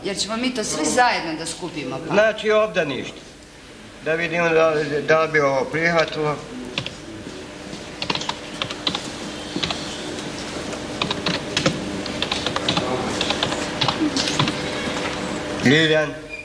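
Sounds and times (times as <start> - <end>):
speech: 0.0 - 3.3, 4.0 - 6.6, 15.6 - 16.2
faint hum: 0.0 - 16.4
typing on a computer keyboard: 8.0 - 9.0, 11.0 - 14.6.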